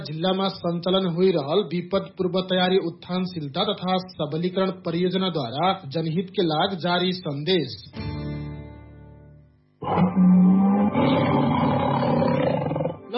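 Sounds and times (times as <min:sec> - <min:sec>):
speech: 0:00.0 - 0:08.2
tiger roaring: 0:09.8 - 0:13.0.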